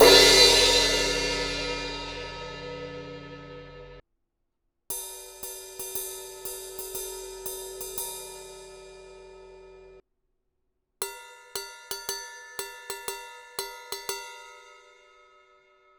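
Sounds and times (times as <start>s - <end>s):
18 inch B8 bronze medium crash ride cymbal bell: 0.0s - 4.0s.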